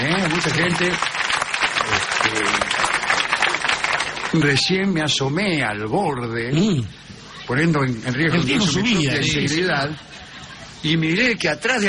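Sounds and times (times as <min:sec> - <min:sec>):
crowd clapping: 0:00.0 - 0:04.9
speech: 0:00.4 - 0:01.3, 0:01.9 - 0:02.8, 0:04.3 - 0:10.2, 0:10.8 - 0:11.8.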